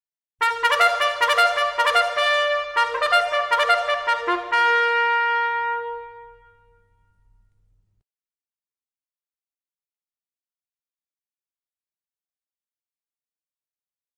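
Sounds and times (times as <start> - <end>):
bugle call: 0.4 - 6.7.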